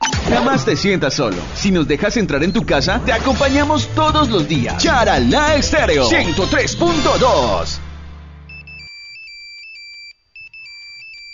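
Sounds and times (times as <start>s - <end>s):
low-pitched burst: 0.2s - 8.5s
speech: 0.3s - 7.8s
cell phone ringtone with electronic melody: 8.5s - 11.3s.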